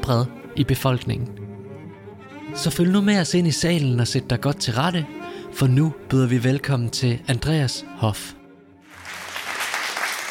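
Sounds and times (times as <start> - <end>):
speech: 0.0 - 1.4, 2.5 - 8.4
room full of people applauding: 8.9 - 10.2.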